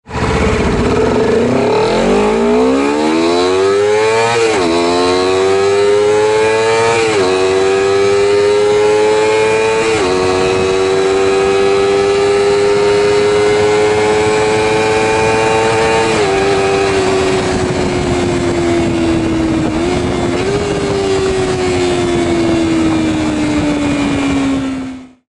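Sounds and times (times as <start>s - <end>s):
CBR250RR motorcycle accelerating: 0.0s - 25.2s.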